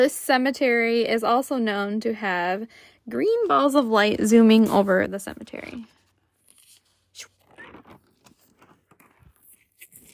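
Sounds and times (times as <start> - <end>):
speech: 0.0 - 6.0
paper rustling and crinkling: 5.5 - 10.1.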